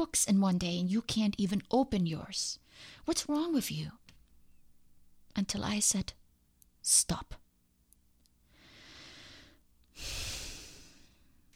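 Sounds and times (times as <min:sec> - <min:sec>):
speech: 0:00.0 - 0:04.0, 0:05.3 - 0:06.2, 0:06.8 - 0:07.4
slow deep breathing during a calming exercise: 0:08.5 - 0:11.4.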